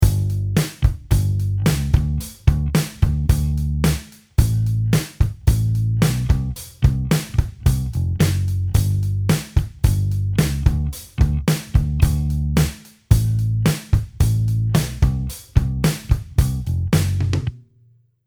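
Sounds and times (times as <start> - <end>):
bass line with passing notes: 0.0 - 17.5.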